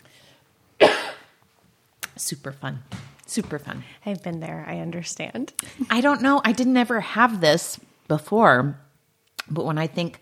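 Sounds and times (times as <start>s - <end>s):
harsh forceful cough: 0.8s - 1.4s
speech: 2.2s - 8.8s, 9.5s - 10.1s.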